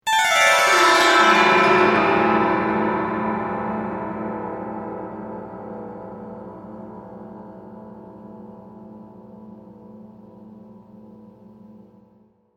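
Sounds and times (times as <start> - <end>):
haunting dulcimer glissando: 0.0 - 4.0.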